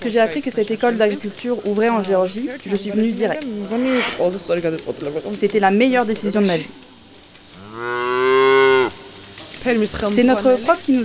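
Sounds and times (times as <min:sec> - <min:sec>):
speech: 0:00.0 - 0:06.9, 0:09.6 - 0:11.0
cow mooing at an agricultural school farm: 0:03.6 - 0:04.3, 0:07.6 - 0:09.1.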